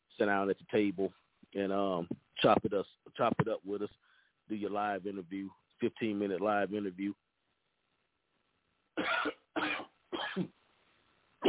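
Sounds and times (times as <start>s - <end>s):
speech: 0.2s - 7.2s, 10.4s - 10.6s
person coughing: 9.0s - 10.6s
throat clearing: 9.0s - 10.6s.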